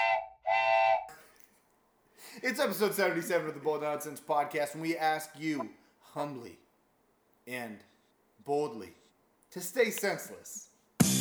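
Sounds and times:
loud train whistle blasts: 0.0 - 1.1
speech: 2.4 - 6.6, 7.4 - 11.1.

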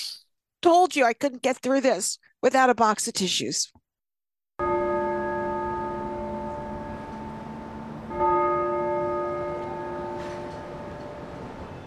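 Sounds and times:
speech: 0.6 - 3.8
church bell tolling: 4.6 - 11.8.

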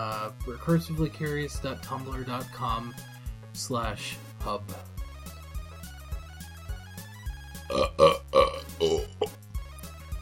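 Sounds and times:
speech: 0.0 - 5.0
loud throaty burps over a cake: 7.7 - 9.4.

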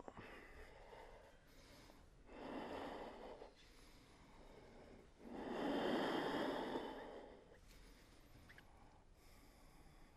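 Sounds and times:
slow deep breathing in and out: 0.0 - 10.1.

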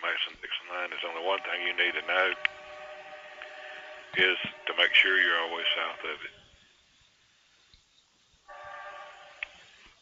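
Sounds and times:
speech: 0.0 - 2.6, 4.1 - 6.4
rumbling noise: 0.0 - 6.8
train horn: 1.0 - 6.6, 8.5 - 10.0.

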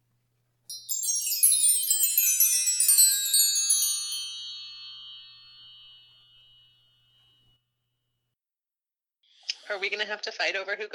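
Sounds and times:
bright tinkling chimes played during a timed break: 0.7 - 7.6
speech: 9.7 - 10.9.

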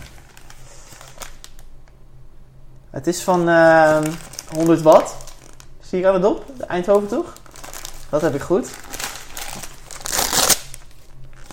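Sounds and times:
wrapping paper crinkling as a gift is unwrapped: 0.0 - 1.7, 3.2 - 5.8, 6.4 - 11.5
speech: 3.0 - 5.2, 5.9 - 7.4, 8.1 - 8.9.

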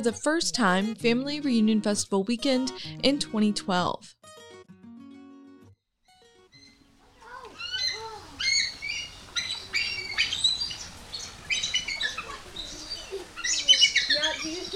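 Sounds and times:
speech: 0.0 - 4.2
eagles calling in an aviary: 6.5 - 14.7.

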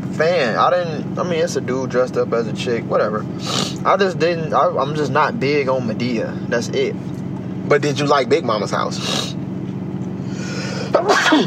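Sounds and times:
speech: 0.2 - 9.4, 11.0 - 11.4
person sneezing: 3.4 - 3.8, 9.0 - 9.4, 10.4 - 11.4.

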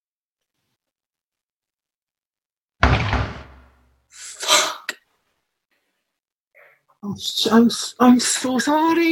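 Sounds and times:
heavy knock on a front door: 2.8 - 3.7
speech: 7.0 - 9.0.

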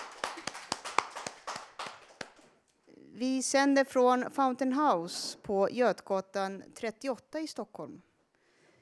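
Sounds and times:
small live audience applause at a radio broadcast in Stockholm, Sweden: 0.0 - 2.5
speech: 3.2 - 8.1.

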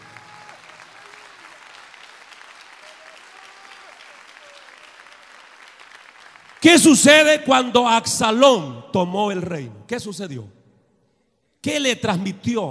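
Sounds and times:
scattered cheers: 0.0 - 5.8
large audience applauding: 0.0 - 7.0
speech: 6.6 - 10.6, 11.6 - 12.6.

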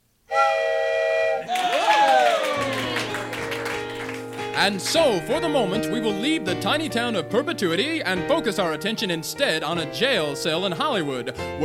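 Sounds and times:
wooden train whistle blown in a chord-like hoot: 0.3 - 1.8
noisy jumble of crowd commotion: 1.4 - 4.9
speech: 4.6 - 11.6.

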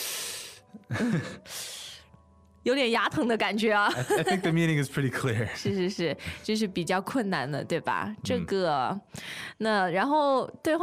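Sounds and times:
person's sharp intakes of breath through the teeth: 0.0 - 0.7
speech: 0.7 - 1.6, 2.6 - 10.8
laughter: 3.9 - 5.9.

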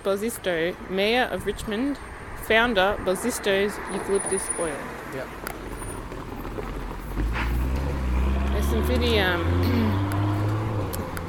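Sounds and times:
speech: 0.0 - 5.5, 8.7 - 10.0
car engine humming while driving past on street: 3.5 - 11.2.

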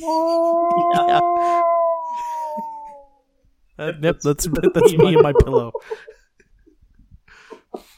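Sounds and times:
speech: 0.0 - 1.6, 3.8 - 6.2
person imitating whale call with a long moaning tone: 0.0 - 3.0
laughter: 0.7 - 1.5, 4.4 - 6.2.

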